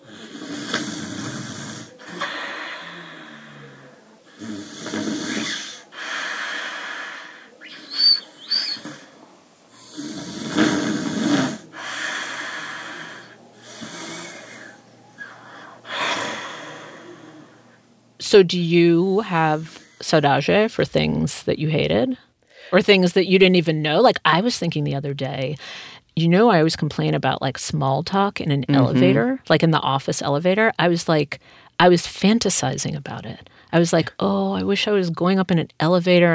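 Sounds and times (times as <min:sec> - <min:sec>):
grandmother snoring heavily with snorts and gasps: 0:00.0 - 0:17.8
speech: 0:18.3 - 0:36.3.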